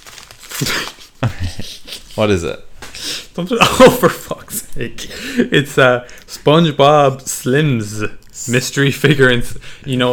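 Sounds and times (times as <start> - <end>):
newspaper gift wrapping being ripped open: 0.0 - 1.2
speech: 0.6 - 0.9, 2.2 - 2.7, 3.4 - 10.1.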